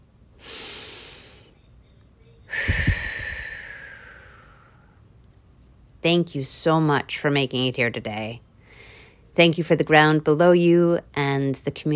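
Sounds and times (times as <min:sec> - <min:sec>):
deep breath in and out: 0:02.5 - 0:05.0, 0:08.6 - 0:09.2
speech: 0:06.0 - 0:08.5, 0:09.4 - 0:11.9.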